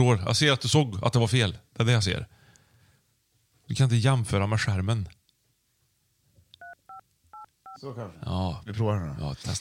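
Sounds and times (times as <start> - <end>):
speech: 0.0 - 2.4, 3.7 - 5.2, 7.8 - 9.6
telephone keypad DTMF dual-pitched tones: 6.6 - 7.5.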